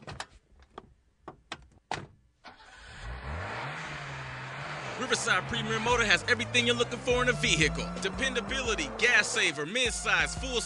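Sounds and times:
sharp thunks: 0:00.0 - 0:02.2
car engine roaring to life and revving: 0:02.6 - 0:10.6
speech: 0:05.0 - 0:10.6.

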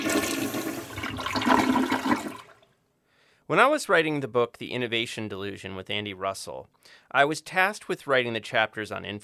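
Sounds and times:
toilet flushing: 0:00.0 - 0:02.7
speech: 0:03.5 - 0:09.2.

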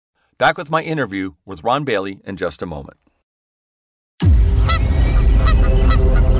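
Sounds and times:
speech: 0:00.4 - 0:03.1
steady heavy roar of noise: 0:04.2 - 0:06.3
flock of geese honking: 0:04.6 - 0:06.3.

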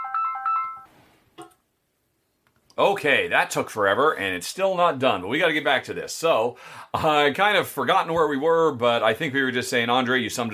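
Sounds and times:
phone ringtone with bright electronic melody: 0:00.0 - 0:00.9
speech: 0:02.8 - 0:10.5.

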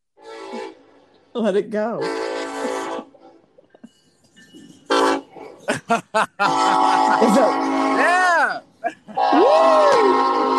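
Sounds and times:
train horn blasts: 0:00.2 - 0:01.1, 0:02.0 - 0:03.4, 0:04.8 - 0:05.6, 0:06.4 - 0:08.6, 0:09.2 - 0:10.5
speech: 0:01.4 - 0:02.3, 0:05.9 - 0:06.7
laughter: 0:05.6 - 0:08.1, 0:08.8 - 0:09.5.

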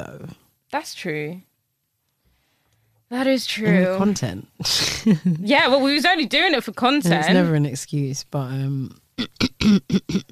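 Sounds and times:
speech: 0:00.1 - 0:01.5, 0:03.1 - 0:10.3
person coughing in short harsh bursts: 0:09.2 - 0:10.3.

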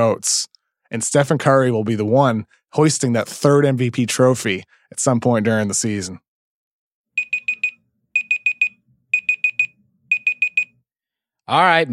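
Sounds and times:
speech: 0:00.0 - 0:06.2, 0:11.5 - 0:11.9
Google smart speaker timer beeping high electronic tones: 0:07.2 - 0:10.8.

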